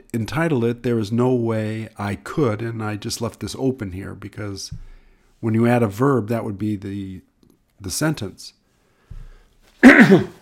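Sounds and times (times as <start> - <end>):
speech: 0.1 - 8.6, 9.8 - 10.4
person getting over a cough coughing: 9.8 - 10.4.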